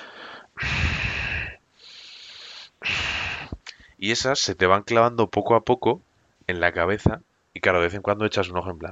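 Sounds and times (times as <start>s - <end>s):
voice imitating a man's loud heavy snorting breathing: 0.0s - 3.6s
speech: 4.0s - 8.8s.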